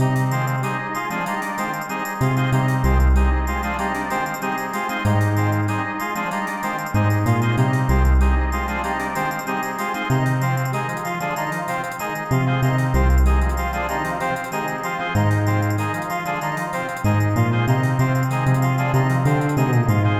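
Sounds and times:
crosswalk waiting music: 0.0s - 20.1s.

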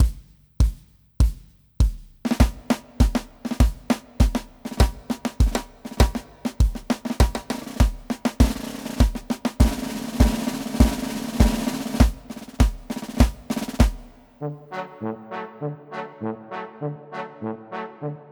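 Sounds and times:
march two-step music: 0.0s - 14.4s.

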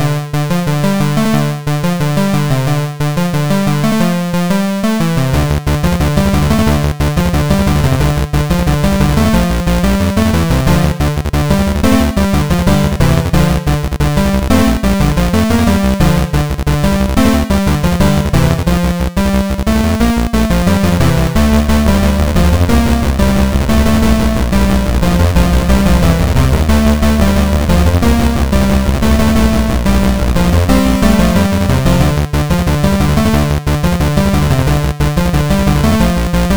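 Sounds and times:
fast paced chiptune for a race or boss battle: 0.0s - 36.5s.

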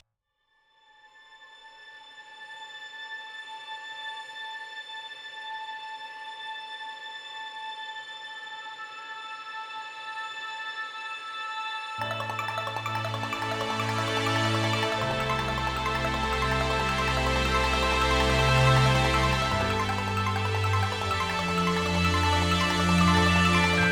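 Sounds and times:
8-bit forest music stinger: 12.0s - 23.9s.

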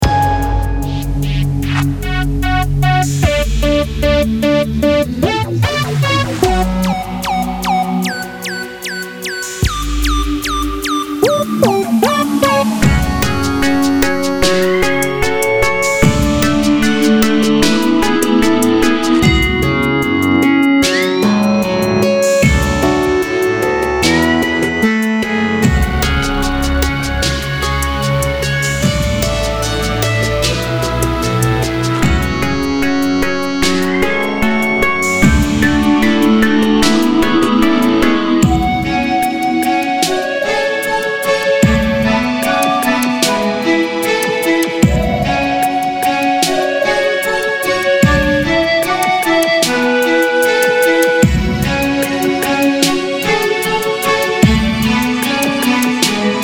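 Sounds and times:
strange sanctuary music loop: 0.0s - 56.4s.

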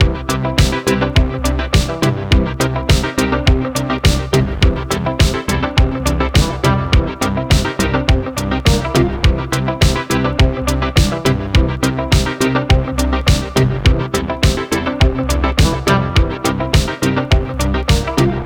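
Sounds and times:
funky menu music loop: 0.0s - 18.4s.

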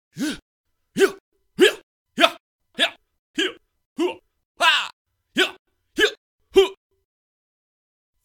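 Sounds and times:
people shouting battle cries: 0.2s - 0.4s, 1.0s - 6.8s.

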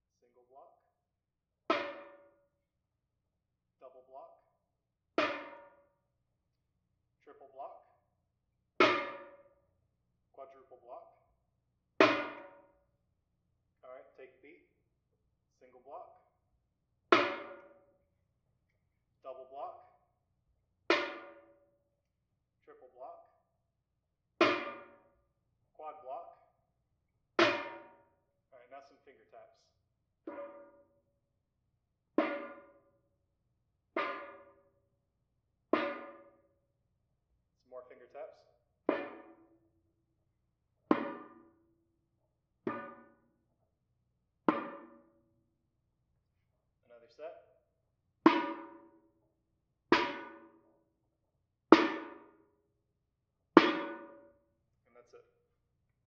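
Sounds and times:
metallic drums: 1.7s - 2.4s, 5.2s - 5.8s, 8.8s - 9.6s, 12.0s - 12.8s, 17.1s - 17.9s, 20.9s - 21.6s, 24.4s - 25.1s, 27.4s - 28.1s, 30.3s - 31.0s, 32.2s - 32.9s, 34.0s - 34.7s, 35.8s - 36.4s, 38.9s - 39.6s, 40.9s - 41.6s, 42.7s - 43.3s, 44.5s - 45.2s, 48.3s - 49.0s, 49.9s - 50.7s, 51.8s - 52.4s, 53.6s - 54.4s.

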